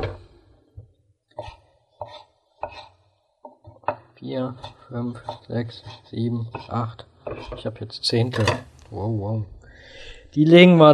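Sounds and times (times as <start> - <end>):
knife chopping halved cored tomatoes into eighths on a cutting board: 1.4 - 4.0, 4.6 - 7.7
speech: 4.2 - 10.9.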